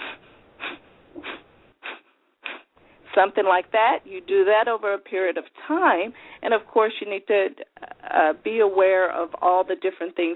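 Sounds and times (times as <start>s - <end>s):
forceful rapid exhalations through the nose in Kapalabhati breathing: 0.0s - 3.1s
speech: 3.2s - 10.3s.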